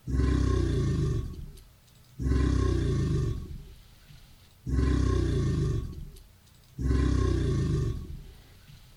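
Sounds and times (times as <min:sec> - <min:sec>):
alligator bellowing roars: 0:00.0 - 0:01.5, 0:02.2 - 0:03.6, 0:04.7 - 0:06.1, 0:06.8 - 0:08.3.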